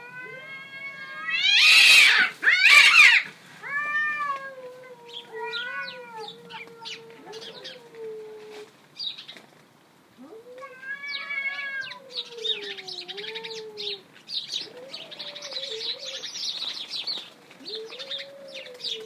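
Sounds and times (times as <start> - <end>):
cat meowing: 0.0 - 8.1, 10.2 - 14.0.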